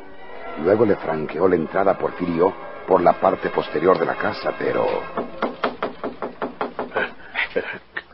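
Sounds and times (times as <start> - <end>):
speech: 0.6 - 5.7, 7.6 - 7.9
knocking on a wooden house door: 5.1 - 7.0.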